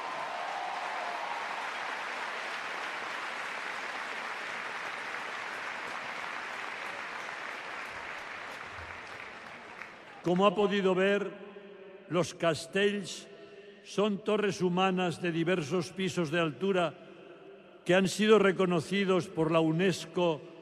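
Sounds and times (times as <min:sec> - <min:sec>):
large crowd applauding: 0:00.0 - 0:10.6
speech: 0:10.2 - 0:11.4, 0:12.1 - 0:17.0, 0:17.8 - 0:20.5.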